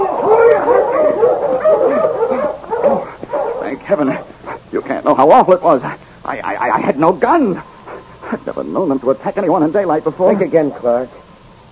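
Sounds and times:
pack of husky dogs barking and yipping excitedly: 0.0 - 4.7
speech: 5.1 - 7.7, 8.3 - 11.2.

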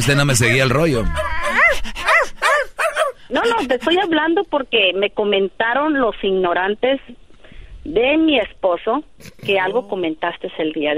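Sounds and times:
speech: 0.0 - 1.3, 3.3 - 7.2, 7.8 - 10.9
dog barking: 1.2 - 4.0.

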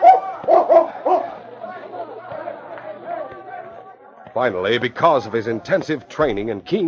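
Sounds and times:
tracking dog barking near the back door of a cafe: 0.0 - 1.3
indistinct chatter: 0.0 - 6.8
speech: 4.4 - 6.8.

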